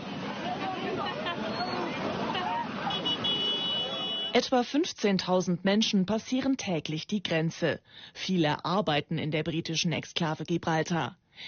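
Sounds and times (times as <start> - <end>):
crowd murmuring at Gibraltar border crossing: 0.0 - 4.1
busy traffic hubbub at Gibraltar border crossing: 0.0 - 5.4
scooter horns honking at Gibraltar border crossing: 1.4 - 4.4
speech: 4.4 - 11.4.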